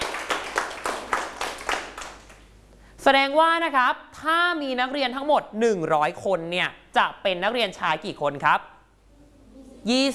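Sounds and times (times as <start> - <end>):
students clapping in a classroom: 0.0 - 2.5
speech: 3.0 - 8.7, 9.8 - 10.1.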